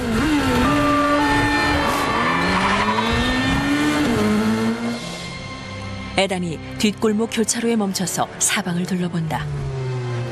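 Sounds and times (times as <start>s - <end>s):
car engines roaring and revving while swerving through traffic: 0.0s - 5.9s, 8.0s - 10.3s
car tires squealing and skidding: 0.1s - 4.5s
speech: 6.2s - 9.7s.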